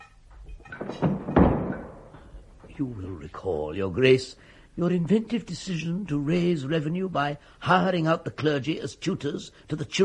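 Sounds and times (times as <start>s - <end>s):
wooden door pulled shut with dull thuds: 0.7s - 2.7s
speech: 2.8s - 10.0s.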